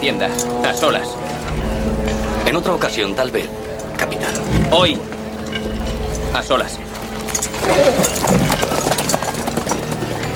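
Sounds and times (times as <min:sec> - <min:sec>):
speech: 0:00.0 - 0:06.8, 0:07.4 - 0:08.6
horse hooves clip-clopping: 0:04.3 - 0:10.3.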